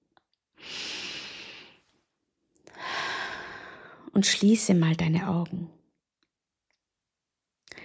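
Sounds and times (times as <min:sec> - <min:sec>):
deep breath drawn in during a guided relaxation exercise: 0:00.6 - 0:01.9, 0:02.7 - 0:04.0
speech: 0:04.1 - 0:05.8.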